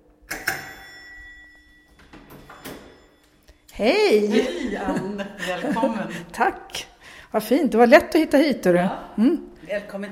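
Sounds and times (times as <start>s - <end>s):
doorbell chiming at a house door: 0.4s - 3.6s
speech: 3.8s - 10.1s
laughter: 4.2s - 6.5s.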